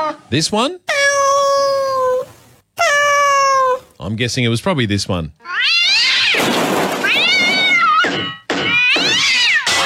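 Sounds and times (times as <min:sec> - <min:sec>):
speech: 0:00.1 - 0:01.0, 0:04.1 - 0:05.7
cat meowing: 0:00.9 - 0:03.9, 0:05.4 - 0:06.4, 0:07.1 - 0:08.1, 0:08.7 - 0:09.7.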